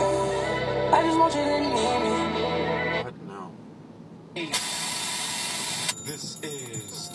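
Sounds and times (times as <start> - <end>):
bus engine rumbling: 0.0 - 7.1
speech: 1.0 - 2.4, 6.1 - 7.1
loud steady broadband hiss: 4.5 - 5.9.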